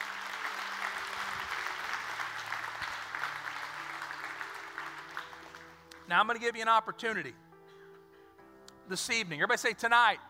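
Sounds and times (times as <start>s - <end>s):
audience at a worship service clapping: 0.0s - 6.1s
speech: 6.1s - 7.4s, 8.9s - 10.2s.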